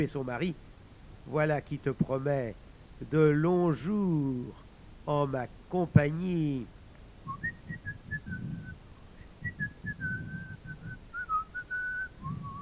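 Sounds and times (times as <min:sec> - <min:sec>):
speech: 0:00.0 - 0:07.6
soft low thuds: 0:07.2 - 0:08.8, 0:09.4 - 0:12.6
man whistling a tune to himself: 0:07.3 - 0:12.6.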